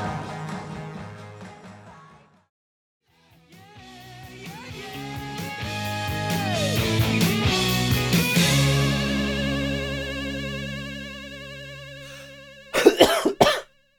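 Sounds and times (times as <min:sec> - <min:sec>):
sustained music: 0:00.0 - 0:02.5, 0:03.1 - 0:12.6
harsh coughing: 0:12.8 - 0:13.6.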